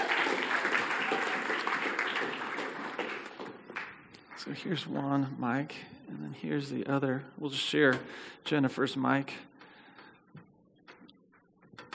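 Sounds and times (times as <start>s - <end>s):
audience applauding: 0.0s - 4.7s
speech: 4.4s - 9.5s.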